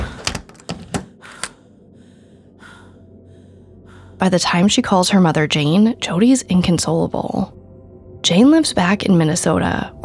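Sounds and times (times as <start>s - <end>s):
front door shutting: 0.0s - 1.6s
speech: 4.2s - 7.6s, 8.3s - 10.0s.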